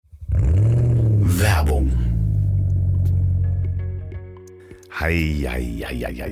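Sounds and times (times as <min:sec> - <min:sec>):
vintage car engine revving with a deep throaty growl: 0:00.1 - 0:04.0
speech: 0:05.0 - 0:06.3.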